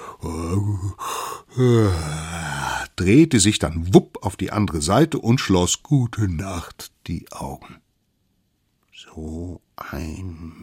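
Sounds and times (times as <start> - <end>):
person acting out an exaggerated loud yawn before sleep: 0.0 - 2.8
speech: 0.2 - 2.3, 3.0 - 7.8, 9.0 - 10.6.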